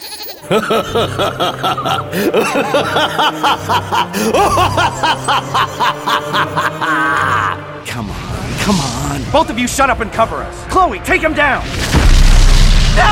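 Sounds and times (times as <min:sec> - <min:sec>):
monstrous creature cry blended with billy goat bleats: 0:00.0 - 0:01.0
speech: 0:00.4 - 0:07.4, 0:08.7 - 0:12.0
laughter: 0:00.4 - 0:07.7.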